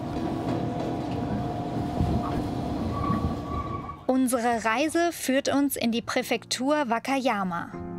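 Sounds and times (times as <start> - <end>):
passenger train in Japan rolling along rails: 0.0 - 4.1
speech: 4.1 - 7.8.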